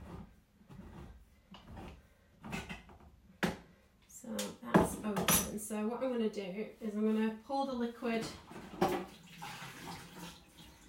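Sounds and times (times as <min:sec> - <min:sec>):
speech: 0:04.3 - 0:08.5
cold water running from a kitchen tap: 0:08.8 - 0:10.8.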